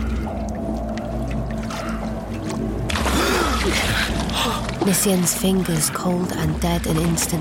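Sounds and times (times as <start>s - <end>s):
low murky rumbling: 0.0s - 7.3s
water sloshing as a body is lowered into a cauldron: 0.0s - 7.3s
speech: 4.8s - 7.3s.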